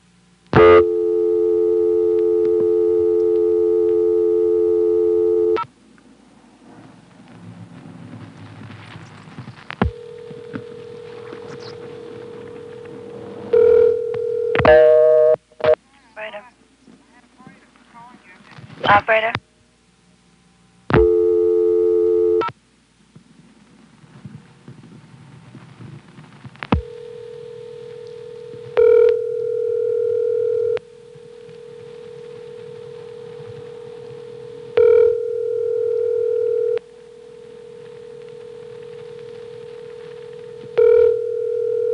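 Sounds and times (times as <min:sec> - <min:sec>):
quiet telephone line noise: 0:00.0 - 0:41.9
telephone dial tone: 0:00.6 - 0:05.6, 0:09.8 - 0:15.4, 0:20.9 - 0:22.5, 0:26.8 - 0:30.8, 0:31.4 - 0:36.8, 0:37.7 - 0:41.9.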